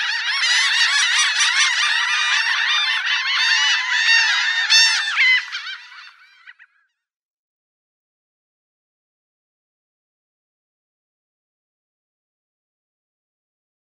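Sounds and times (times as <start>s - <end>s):
Laughing gull nasal laughing calls: 0.0s - 6.7s.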